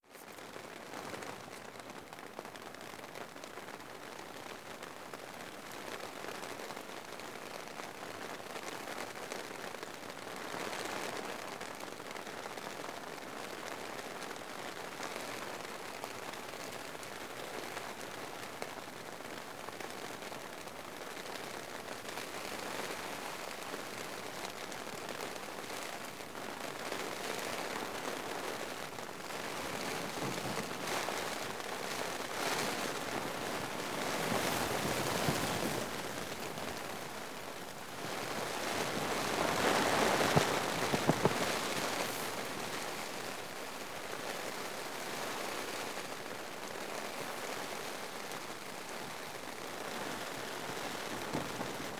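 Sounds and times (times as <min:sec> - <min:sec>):
rain on a tent: 0:00.0 - 0:51.9.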